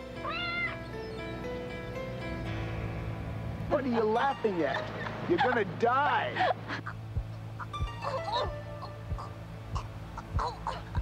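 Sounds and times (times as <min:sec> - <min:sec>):
low drone: 0:00.0 - 0:11.0
cat meowing and caterwauling: 0:00.2 - 0:00.9
speech: 0:03.8 - 0:07.0, 0:08.0 - 0:08.6
laughter: 0:04.5 - 0:07.0.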